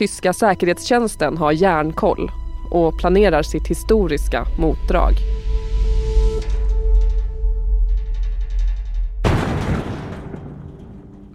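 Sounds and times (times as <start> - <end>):
speech: 0.0 - 5.4
low steady rumble with faint ringing tones: 0.0 - 11.3
explosion of a door being blasted open: 9.2 - 11.3.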